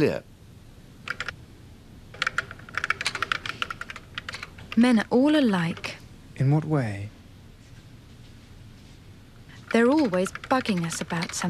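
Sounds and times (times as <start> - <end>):
speech: 0.0 - 0.3, 4.8 - 7.2, 9.7 - 11.4
low hum: 0.0 - 11.4
typing on a computer keyboard: 1.1 - 1.4, 2.2 - 6.0, 9.5 - 11.4.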